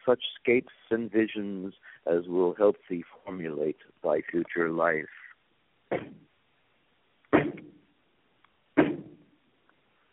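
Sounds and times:
speech: 0:00.1 - 0:05.2, 0:05.9 - 0:06.3, 0:07.3 - 0:07.7
heavy knocks on a door with booming echo: 0:07.4 - 0:07.8.

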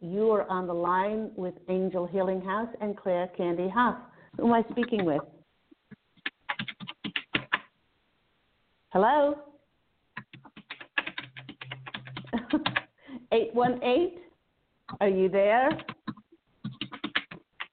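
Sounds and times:
speech: 0:00.0 - 0:05.4, 0:08.9 - 0:09.5, 0:12.5 - 0:14.2, 0:14.9 - 0:16.0
keyboard typing: 0:04.5 - 0:05.2, 0:05.9 - 0:07.7, 0:10.2 - 0:12.9, 0:15.7 - 0:17.7
person laughing: 0:12.1 - 0:13.2.

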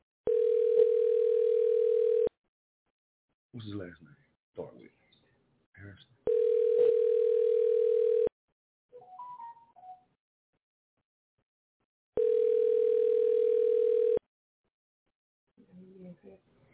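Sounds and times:
telephone ringback tone: 0:00.3 - 0:02.3, 0:06.3 - 0:08.3, 0:12.2 - 0:14.2
speech: 0:03.6 - 0:05.0, 0:05.8 - 0:06.2.

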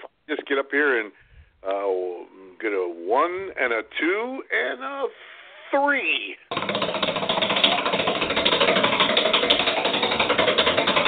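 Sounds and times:
speech: 0:00.3 - 0:07.2
prize wheel spinning with rapid mechanical ticks: 0:06.5 - 0:11.0.

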